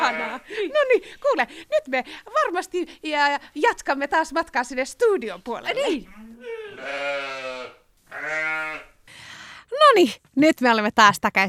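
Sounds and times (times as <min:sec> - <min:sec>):
sheep bleating on an open pasture at a sheep farm: 0:00.0 - 0:00.6, 0:06.1 - 0:09.0
speech: 0:00.4 - 0:07.4, 0:09.7 - 0:11.4.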